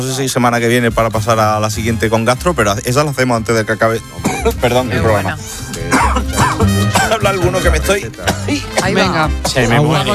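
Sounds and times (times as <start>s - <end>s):
speech: 0.0s - 6.0s, 7.2s - 10.1s
person in a coughing fit: 4.2s - 4.7s, 5.8s - 7.4s, 8.2s - 9.8s.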